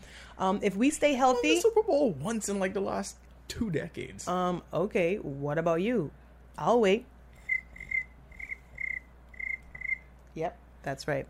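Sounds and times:
speech: 0.4 - 7.1, 10.4 - 11.2
woman imitating cricket chirps: 7.4 - 10.1.

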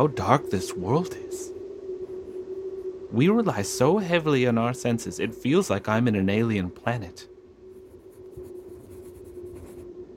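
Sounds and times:
speech: 0.0 - 1.6, 3.1 - 7.3
steady low hum: 0.0 - 10.1
pen writing by hand on paper: 7.9 - 9.8.

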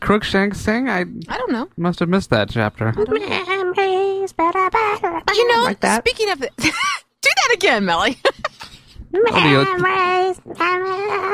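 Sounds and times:
speech: 0.1 - 8.3, 9.1 - 11.3
person's voice mimicking a wailing cat: 3.0 - 5.8, 9.1 - 11.3.

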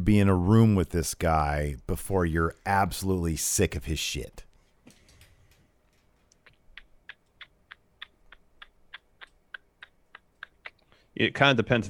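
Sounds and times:
speech: 0.0 - 4.4, 11.2 - 11.8
voice mimicking a ticking clock with mouth clicks: 5.9 - 11.1.

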